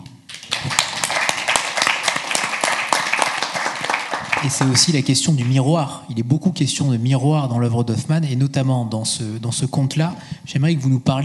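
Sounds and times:
audience applauding: 0:00.3 - 0:05.6
speech: 0:04.4 - 0:11.2.

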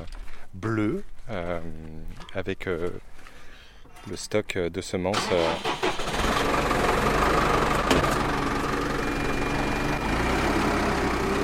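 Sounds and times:
speech: 0:00.6 - 0:03.3, 0:04.0 - 0:07.5
blue tractor engine idling with mechanical rattle: 0:05.2 - 0:11.4.

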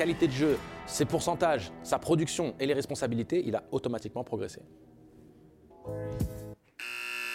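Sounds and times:
speech: 0:00.0 - 0:04.9
bright steady electronic buzz: 0:05.8 - 0:07.3
harsh rumbling buzzer: 0:06.8 - 0:07.3.

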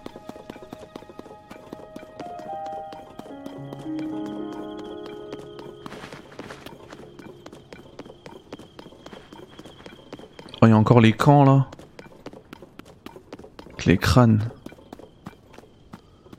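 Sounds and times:
sustained tones: 0:00.0 - 0:11.7
horse hooves clip-clopping: 0:00.0 - 0:16.3
speech: 0:10.6 - 0:11.8, 0:13.8 - 0:14.6.

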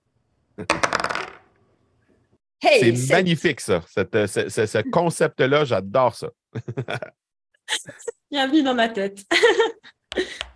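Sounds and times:
speech: 0:00.6 - 0:01.0, 0:02.6 - 0:10.4
dice rolled onto a hard surface: 0:00.7 - 0:01.6
laughter: 0:02.8 - 0:07.1, 0:07.7 - 0:08.1, 0:09.3 - 0:10.4.

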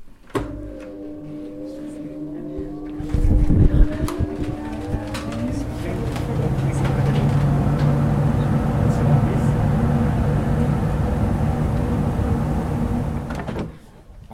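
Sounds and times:
pipe organ blower motors whirring: 0:00.4 - 0:13.8
pipe organ blower motor starting clunk: 0:04.0 - 0:13.8.

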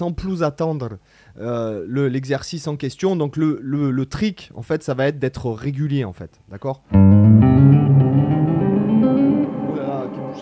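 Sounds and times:
speech: 0:00.0 - 0:08.0
electric guitar with heavy reverb: 0:06.9 - 0:10.4.

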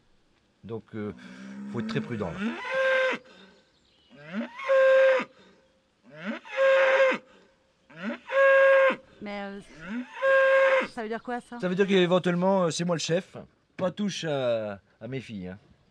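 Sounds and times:
speech: 0:00.6 - 0:02.8, 0:11.0 - 0:15.7
bull bellowing: 0:01.2 - 0:03.4, 0:04.2 - 0:09.0, 0:09.7 - 0:11.0.

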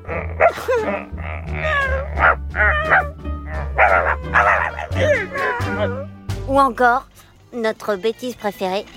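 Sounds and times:
dog barking and yipping: 0:00.4 - 0:00.9, 0:01.6 - 0:06.1
speech: 0:00.5 - 0:01.6, 0:06.6 - 0:08.9.

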